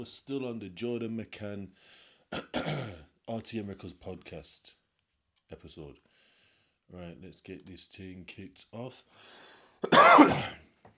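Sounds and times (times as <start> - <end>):
speech: 0.0 - 4.8, 5.5 - 6.1, 6.9 - 10.9
faint breath or throat sound: 1.8 - 2.3, 6.0 - 6.8, 9.1 - 9.8
single rough cough: 2.3 - 3.1, 9.8 - 10.7.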